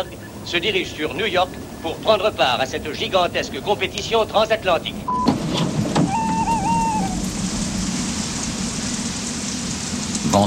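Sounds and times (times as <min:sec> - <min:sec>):
speech: 0:00.0 - 0:05.3
cold wind on an airfield before dawn: 0:00.0 - 0:10.4
light rain on an airfield before dawn: 0:00.0 - 0:10.4
brief tonal whistle: 0:06.0 - 0:07.3.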